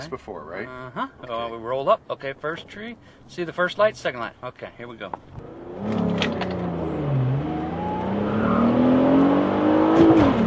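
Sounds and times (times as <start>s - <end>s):
speech: 0.0s - 6.0s
drag racing car accelerating flat out through its gears: 5.4s - 10.4s.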